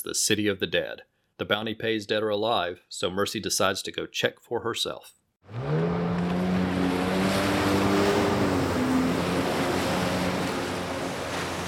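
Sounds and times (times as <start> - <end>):
speech: 0.0 - 6.0
jet ski engine droning while speeding across ocean waves: 5.5 - 11.6
rushing water and spray: 5.6 - 11.6.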